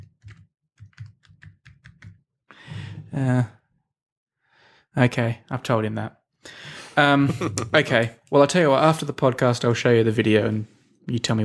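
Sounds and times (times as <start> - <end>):
typing on a computer keyboard: 0.0 - 2.2
breathy exhale with voiced sigh: 2.5 - 3.4
speech: 3.1 - 3.6, 5.0 - 11.4.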